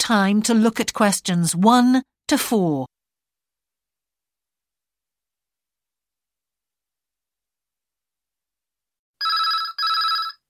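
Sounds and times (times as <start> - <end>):
speech: 0.1 - 2.9
telephone ringing with a bright trilling electronic bell: 9.2 - 10.4.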